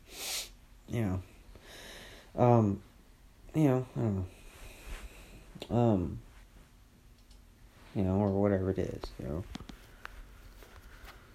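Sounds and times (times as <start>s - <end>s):
quick breathy nasal sniffle: 0.0s - 0.6s
speech: 0.9s - 1.3s, 2.3s - 2.9s, 3.6s - 4.4s, 5.6s - 6.2s, 7.9s - 9.7s.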